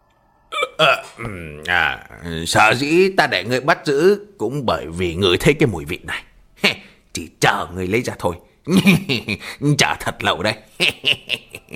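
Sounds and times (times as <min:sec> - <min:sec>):
person performing a smug hiccup: 0:00.5 - 0:01.8
speech: 0:00.8 - 0:06.3, 0:07.2 - 0:11.7
laughter: 0:10.8 - 0:11.7.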